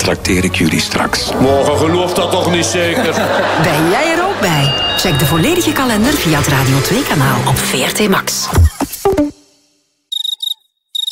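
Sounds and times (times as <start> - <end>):
speech: 0.1 - 8.7
laughter: 1.1 - 7.3
cricket chirping in short rapid pulsed bursts: 10.1 - 11.1.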